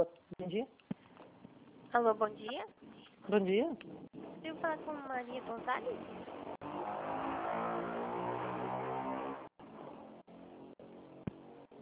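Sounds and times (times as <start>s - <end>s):
speech: 0.0s - 0.8s, 1.9s - 6.4s
noisy motorcycle engine roaring and passing: 3.5s - 11.8s.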